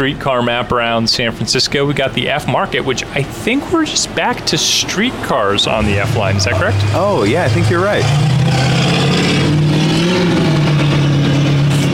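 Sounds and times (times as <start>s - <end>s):
speech: 0.0s - 9.0s
street ambience: 0.0s - 11.9s
car engine revving on street: 4.6s - 11.9s.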